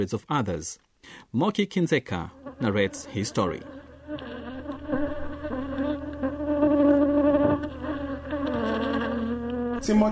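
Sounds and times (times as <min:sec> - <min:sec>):
speech: 0:00.0 - 0:04.3, 0:09.8 - 0:10.0
honey bees buzzing around a beekeeper's hives near Yaoundé: 0:02.2 - 0:10.0.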